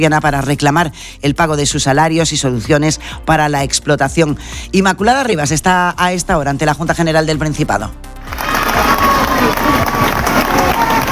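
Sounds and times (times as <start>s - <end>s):
speech: 0.0s - 8.4s
applause for arriving miners: 8.2s - 11.1s
dense crowd shouting and cheering for arriving miners: 8.2s - 11.1s.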